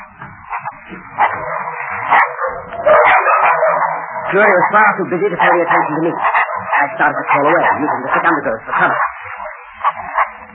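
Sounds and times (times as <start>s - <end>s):
dogs barking and snarling ferociously while attacking: 0.0s - 10.5s
speech: 4.3s - 9.2s.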